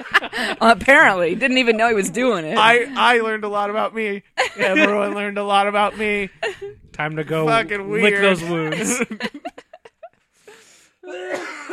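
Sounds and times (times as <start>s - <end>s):
laughter: 0.0s - 3.0s, 4.4s - 10.2s
speech: 0.0s - 9.6s, 11.1s - 11.7s
raspy wheezing coughs from someone with a two-month cough: 11.1s - 11.7s.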